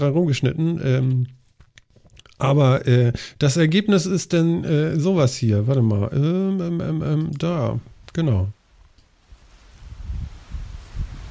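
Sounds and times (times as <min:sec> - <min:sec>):
speech: 0:00.0 - 0:01.4, 0:02.4 - 0:08.6
processed recording with a soft rain-like rustling hiss: 0:07.4 - 0:11.2.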